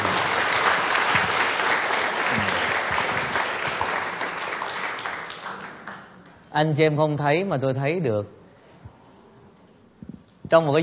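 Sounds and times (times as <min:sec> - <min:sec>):
large crowd applauding: 0:00.0 - 0:06.5
speech: 0:06.6 - 0:08.4, 0:10.5 - 0:10.8.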